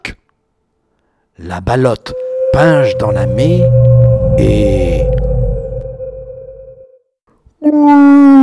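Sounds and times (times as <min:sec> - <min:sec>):
speech: 0:01.4 - 0:03.8, 0:04.4 - 0:05.2, 0:07.6 - 0:08.3
whale moaning call gliding downward: 0:01.7 - 0:06.9
low rumbling tone: 0:02.0 - 0:06.9.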